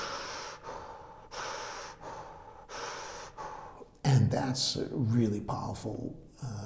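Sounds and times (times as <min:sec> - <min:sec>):
loud circular breathing: 0:00.0 - 0:03.9
speech: 0:04.3 - 0:06.6.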